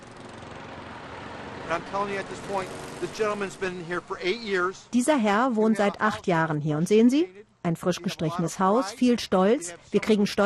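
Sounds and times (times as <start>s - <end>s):
lawn mower engine droning: 0.0s - 4.9s
speech: 1.7s - 10.4s.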